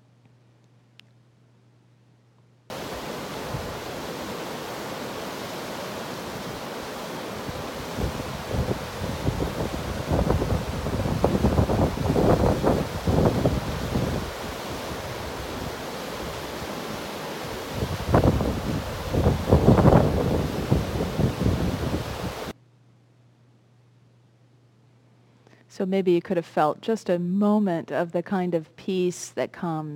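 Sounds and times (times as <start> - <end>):
waterfall rushing: 2.7 - 22.5
wind gusts buffeting the microphone outdoors: 2.8 - 4.8, 6.3 - 22.5
speech: 25.8 - 29.9.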